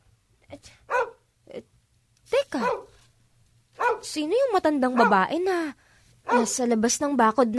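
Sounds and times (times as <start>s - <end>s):
house dog barking in yelps: 0.9s - 1.2s, 2.6s - 3.0s, 3.8s - 4.2s, 4.9s - 5.3s, 6.2s - 6.6s
speech: 4.2s - 7.5s.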